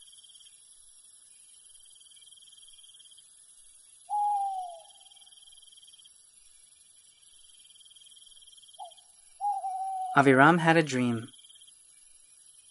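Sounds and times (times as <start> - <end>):
crickets chirring at night: 0.0 - 12.7
owl hooting at night: 4.1 - 5.3, 8.8 - 11.3
speech: 10.2 - 11.4.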